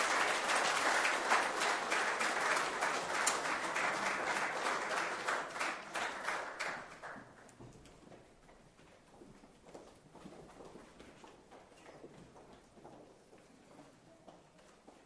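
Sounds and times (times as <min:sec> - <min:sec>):
crowd applauding children: 0:00.0 - 0:07.4.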